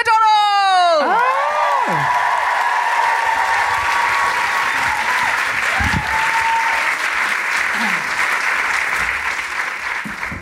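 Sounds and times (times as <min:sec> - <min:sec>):
high whooping cheers: 0:00.6 - 0:08.1
large crowd applauding: 0:01.0 - 0:10.4.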